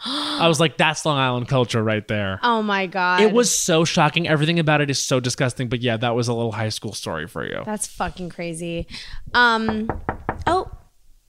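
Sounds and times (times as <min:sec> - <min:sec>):
speech: 0:00.0 - 0:10.7
voice making drawn-out vocal sounds: 0:03.2 - 0:03.5
sharp knocks on a door: 0:09.6 - 0:10.9.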